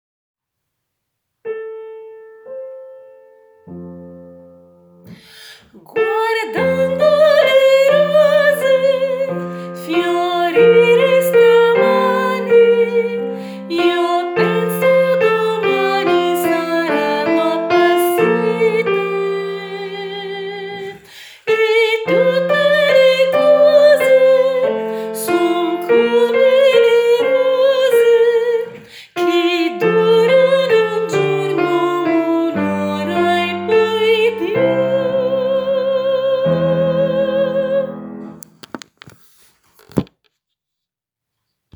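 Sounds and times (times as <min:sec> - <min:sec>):
sopranos singing high part intro: 0:05.8 - 0:38.4.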